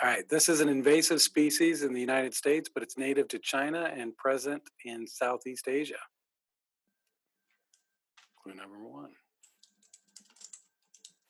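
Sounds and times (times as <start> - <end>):
speech: 0.0 - 6.2, 8.5 - 9.2
fingers typing on a computer keyboard: 9.4 - 11.2.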